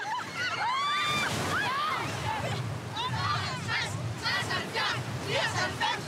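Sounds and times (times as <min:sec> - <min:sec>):
children in a swimming lesson shouting and squealing: 0:00.0 - 0:02.1
sea waves washing and sloshing: 0:00.0 - 0:06.0.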